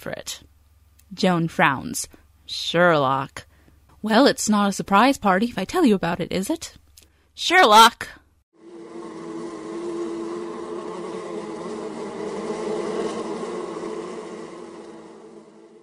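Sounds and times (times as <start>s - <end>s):
speech: 0.0s - 0.5s, 1.1s - 6.8s, 7.4s - 8.2s
swarm of many bees buzzing: 8.6s - 15.8s.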